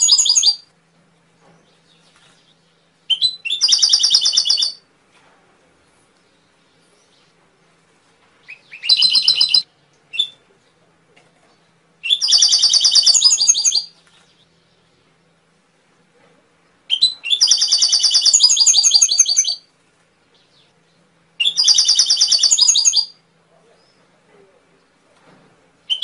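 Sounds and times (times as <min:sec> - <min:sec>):
canary singing trills: 0:00.0 - 0:00.7, 0:01.6 - 0:04.8, 0:08.4 - 0:10.4, 0:12.0 - 0:15.0, 0:16.9 - 0:24.1, 0:25.8 - 0:26.0.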